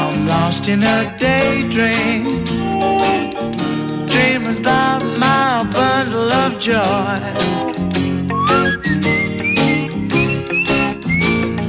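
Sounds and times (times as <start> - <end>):
speech: 0.4 - 7.9
bright whistled melody: 8.3 - 11.6.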